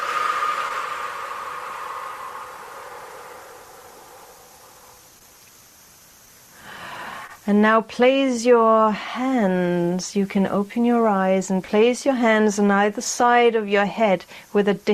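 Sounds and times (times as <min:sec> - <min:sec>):
deep inhale and full exhale during a guided breathing exercise: 0:00.0 - 0:05.3, 0:06.5 - 0:07.4
speech: 0:07.4 - 0:14.9.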